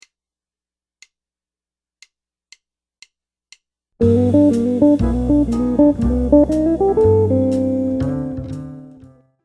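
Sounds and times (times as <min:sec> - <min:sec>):
jazz guitar lick: 0:04.0 - 0:09.0.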